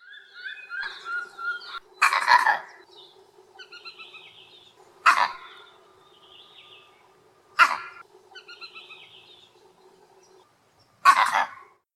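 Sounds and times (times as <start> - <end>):
soft birdsong and chirping: 0.0 - 11.8
vervet monkey eagle alarm call barking: 0.5 - 2.8, 3.6 - 5.8, 7.6 - 9.1, 11.0 - 11.8.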